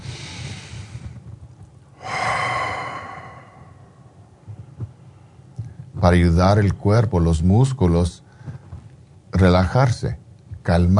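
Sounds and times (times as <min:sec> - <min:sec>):
slow deep breathing: 0:00.0 - 0:04.7
speech: 0:06.0 - 0:08.3, 0:09.4 - 0:10.9.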